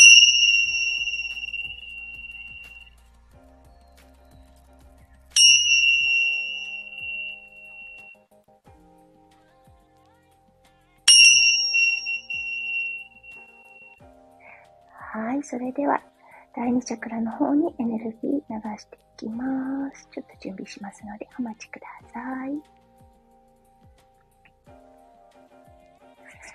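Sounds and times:
Tibetan bell being struck: 0:00.0 - 0:03.0, 0:05.4 - 0:08.1, 0:11.1 - 0:14.0
speech: 0:15.2 - 0:22.8.

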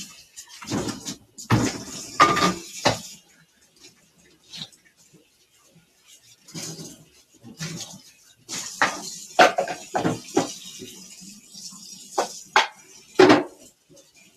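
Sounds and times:
dishes and pans clattering while tidying up after cooking yakisoba: 0:00.0 - 0:03.2, 0:07.6 - 0:11.2, 0:12.1 - 0:13.8.

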